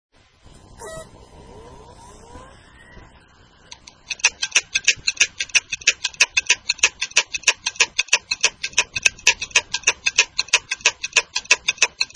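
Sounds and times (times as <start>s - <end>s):
Maxtor 160GB hard disk with locked motor knocking: 3.8s - 12.1s.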